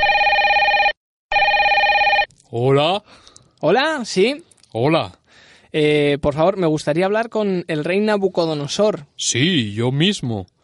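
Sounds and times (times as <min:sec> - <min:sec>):
warbling electronic telephone ring after dialing: 0:00.0 - 0:02.3
speech: 0:02.5 - 0:10.6.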